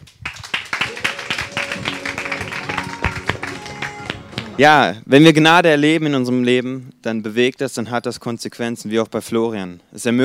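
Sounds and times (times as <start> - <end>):
audience clapping: 0.2 - 4.6
speech: 4.6 - 10.2.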